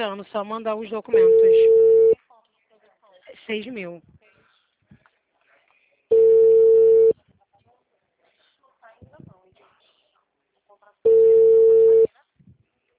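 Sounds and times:
speech: 0:00.0 - 0:01.9, 0:03.5 - 0:04.1
telephone line busy tone after a dropped call: 0:01.2 - 0:02.2, 0:06.1 - 0:07.2, 0:11.1 - 0:12.1.

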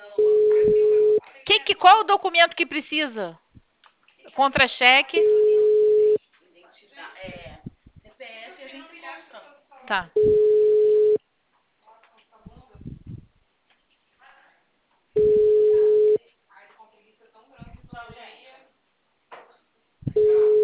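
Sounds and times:
telephone call tone while calling a mobile phone: 0:00.2 - 0:01.2, 0:05.2 - 0:06.2, 0:10.2 - 0:11.2, 0:15.2 - 0:16.2, 0:20.2 - 0:20.6
speech: 0:01.8 - 0:03.4, 0:04.4 - 0:05.5, 0:09.9 - 0:10.4.

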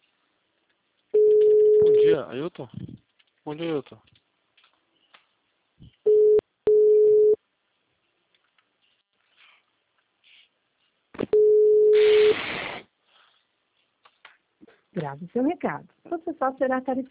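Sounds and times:
telephone line beeping tone: 0:01.2 - 0:02.1, 0:06.1 - 0:07.4, 0:11.3 - 0:12.3
speech: 0:02.2 - 0:04.2, 0:15.1 - 0:17.0
static hiss: 0:11.9 - 0:13.4.

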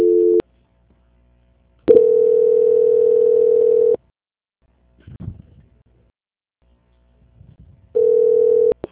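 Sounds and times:
telephone ringback tone while a call is transferred: 0:00.0 - 0:00.4, 0:01.9 - 0:04.0, 0:08.0 - 0:08.8.

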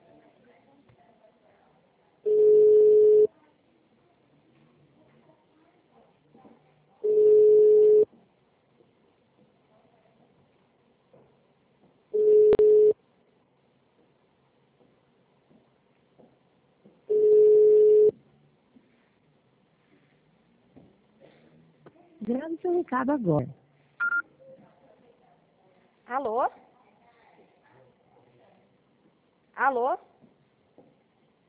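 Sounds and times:
faint noise: 0:00.0 - 0:31.4
telephone ringback tone while placing a call: 0:02.3 - 0:03.3, 0:07.0 - 0:08.1, 0:12.2 - 0:13.0, 0:17.1 - 0:18.1
speech: 0:22.3 - 0:23.6, 0:26.1 - 0:26.6, 0:29.6 - 0:30.1.

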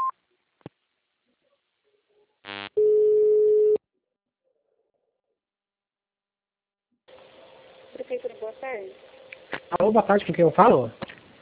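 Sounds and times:
telephone system tone: 0:02.8 - 0:03.8
speech: 0:08.7 - 0:09.1, 0:09.8 - 0:11.0.

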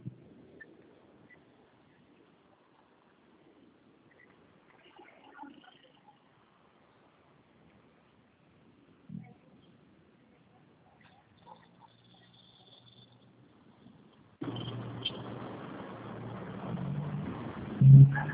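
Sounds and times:
car engine rumbling while the car is being parked: 0:14.4 - 0:18.3.

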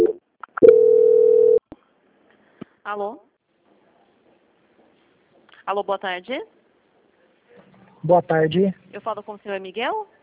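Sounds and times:
telephone line tone while a bank call is transferred: 0:00.0 - 0:01.6
speech: 0:02.9 - 0:03.3, 0:05.7 - 0:06.6, 0:08.0 - 0:10.2.

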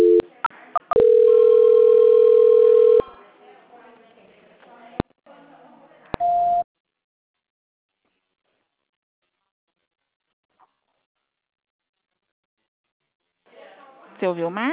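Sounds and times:
long steady telephone tone during a call transfer: 0:00.0 - 0:00.3, 0:00.9 - 0:03.1
short telephone beeps during a call transfer: 0:06.2 - 0:06.6.

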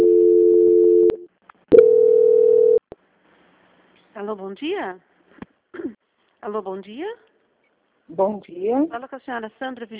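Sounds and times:
steady telephone line tone during a call transfer: 0:00.0 - 0:02.8
speech: 0:04.2 - 0:05.1, 0:06.4 - 0:07.3, 0:08.1 - 0:09.9.

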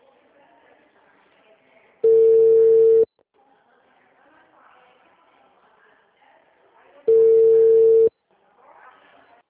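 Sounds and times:
telephone tones after a call line drops: 0:02.0 - 0:03.1, 0:07.1 - 0:08.1.

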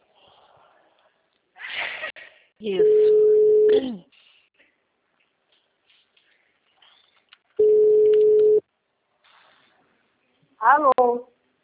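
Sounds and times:
speech: 0:02.6 - 0:04.1
steady mid-pitched telephone beep after a dropped call: 0:02.8 - 0:03.7, 0:07.6 - 0:08.6
brief wavering telephone tone after a dropped call: 0:07.6 - 0:08.6.

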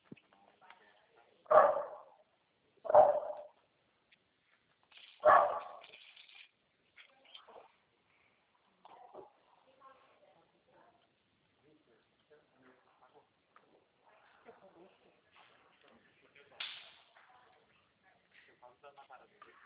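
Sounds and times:
dog barking: 0:01.5 - 0:02.2, 0:02.9 - 0:03.6, 0:05.2 - 0:05.9
dog yipping: 0:02.9 - 0:03.5, 0:05.2 - 0:05.9.

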